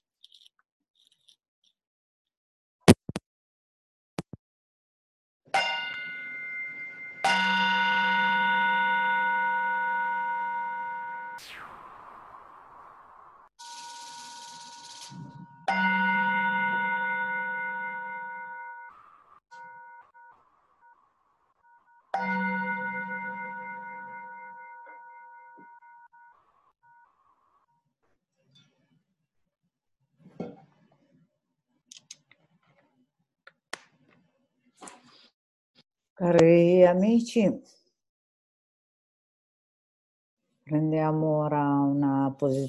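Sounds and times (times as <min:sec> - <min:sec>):
meditation bell ringing: 0:05.6 - 0:11.4, 0:15.2 - 0:21.0, 0:21.6 - 0:27.1
speech: 0:36.2 - 0:37.8, 0:41.0 - 0:42.6.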